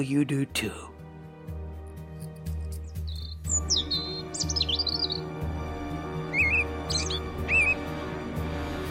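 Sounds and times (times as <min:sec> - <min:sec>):
speech: 0:00.0 - 0:00.9
robin chirping and singing in short bright whistled phrases: 0:02.5 - 0:08.8.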